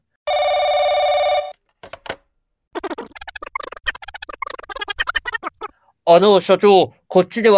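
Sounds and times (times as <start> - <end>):
telephone ringing: 0.3 - 1.6
speech: 6.1 - 7.5.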